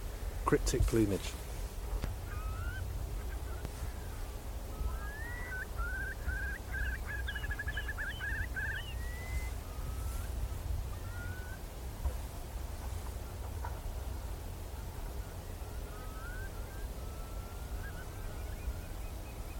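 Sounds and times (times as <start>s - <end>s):
steady low wind rumble: 0.0s - 19.5s
speech: 0.5s - 1.5s
Eurasian curlews calling over winter salt marshes at dusk: 1.9s - 11.6s, 14.8s - 19.5s.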